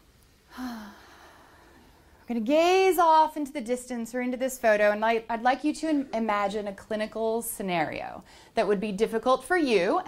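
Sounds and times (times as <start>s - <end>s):
group taking a deep breath: 0.5s - 2.2s
speech: 2.3s - 10.0s.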